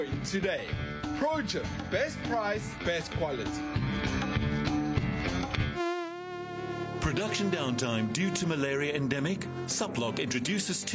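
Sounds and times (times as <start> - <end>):
speech: 0.0 - 4.3, 7.1 - 10.9
mosquito buzzing: 4.6 - 10.9
dense harmonic sound: 5.7 - 10.5.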